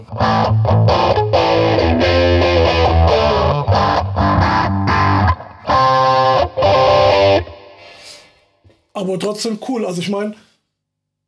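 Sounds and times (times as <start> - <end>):
speech: 0.0 - 0.3, 9.0 - 10.5
crunchy vintage-style overdriven electric guitar through distortion pedal playing chopped chords and riffs: 0.0 - 8.0.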